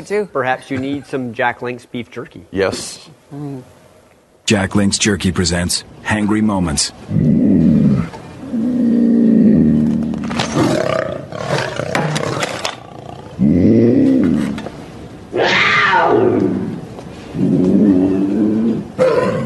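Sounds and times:
speech: 0:00.0 - 0:03.8, 0:04.5 - 0:08.2
puma roaring and growling: 0:07.1 - 0:14.7, 0:15.3 - 0:19.4.

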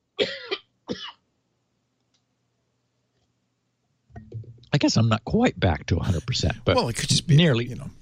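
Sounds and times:
person coughing: 0:00.2 - 0:01.2
speech: 0:04.7 - 0:07.9.

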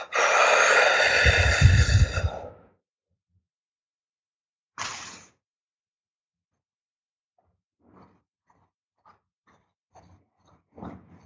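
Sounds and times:
forceful exhale during a yogic breathing exercise: 0:00.0 - 0:02.6.

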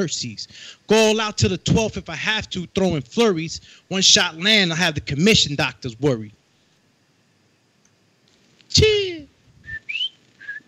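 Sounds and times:
speech: 0:00.0 - 0:06.4, 0:08.7 - 0:09.1
person whistling: 0:09.7 - 0:10.6.

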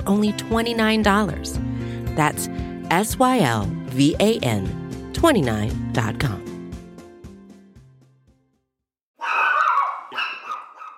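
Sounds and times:
speech: 0:00.0 - 0:06.5
puppy barking: 0:09.2 - 0:10.9.

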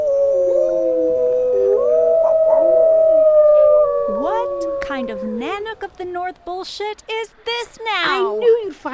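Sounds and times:
several wolves howling together: 0:00.0 - 0:05.8
speech: 0:05.8 - 0:08.9.

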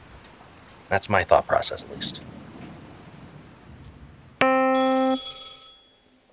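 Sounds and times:
steady rain-like noise: 0:00.0 - 0:05.2
speech: 0:00.9 - 0:02.4
telephone ringing: 0:04.4 - 0:06.1.

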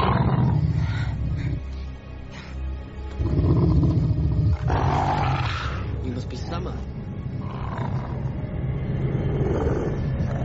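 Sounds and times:
wolf growling and snarling: 0:00.0 - 0:01.8, 0:03.1 - 0:06.0, 0:07.3 - 0:10.4.

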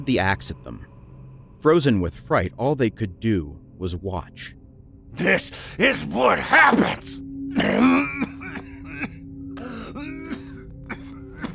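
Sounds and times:
speech: 0:00.0 - 0:00.9, 0:01.6 - 0:08.3
man's rough guttural growl: 0:07.5 - 0:08.6
short coughs and throat-clearing bursts: 0:07.5 - 0:11.5.

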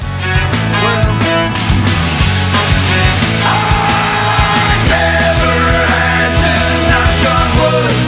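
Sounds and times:
loud dense rock song: 0:00.0 - 0:08.0
pounding drums and bass: 0:00.0 - 0:08.0
singer's raw sustained scream in a rock song: 0:03.2 - 0:08.0.

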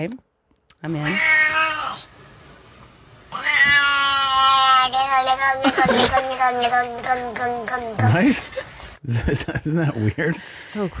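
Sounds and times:
speech: 0:00.0 - 0:01.4, 0:05.0 - 0:10.9
cat meowing and yowling through a playback: 0:01.0 - 0:02.1, 0:03.3 - 0:08.2.

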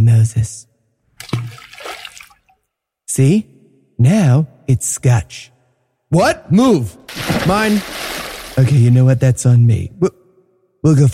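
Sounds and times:
speech: 0:00.0 - 0:00.7, 0:03.2 - 0:05.5, 0:06.1 - 0:10.2, 0:10.8 - 0:11.1
tree thrown into a pool of water: 0:01.2 - 0:02.5, 0:07.1 - 0:09.0.

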